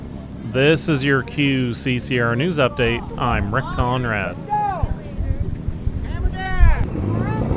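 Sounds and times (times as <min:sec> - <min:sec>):
fishing boat engines leaving wharves along the South Shore: 0:00.0 - 0:07.5
speech: 0:00.5 - 0:04.6
wind buffeting the microphone: 0:04.7 - 0:07.5.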